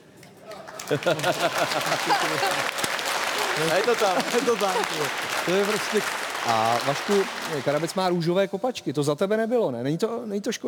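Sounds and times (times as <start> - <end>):
live audience applause: 0.5 - 8.3
laughter: 0.7 - 7.8
speech: 0.9 - 2.8, 3.6 - 10.6.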